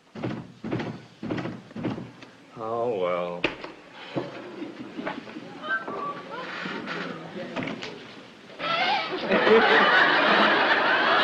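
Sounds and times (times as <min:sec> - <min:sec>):
heavy wooden thumps of a door being worked open and shut: 0:00.2 - 0:02.1
speech: 0:02.6 - 0:03.6, 0:09.2 - 0:10.2
laughter: 0:09.0 - 0:11.2.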